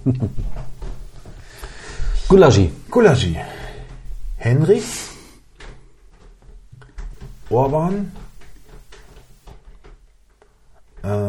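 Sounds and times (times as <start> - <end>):
speech: 0.0 - 0.7, 2.3 - 3.6, 4.4 - 5.1, 7.5 - 8.2, 11.0 - 11.2
door pushed shut by a child: 0.0 - 10.0.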